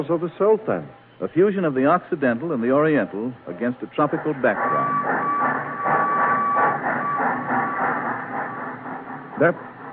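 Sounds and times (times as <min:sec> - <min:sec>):
speech: 0:00.0 - 0:05.4, 0:09.4 - 0:09.7
train carrying tobacco rumbling past: 0:04.0 - 0:09.9
brief squealing burst: 0:04.4 - 0:08.8
faint sustained whistle-like tone: 0:04.5 - 0:07.5.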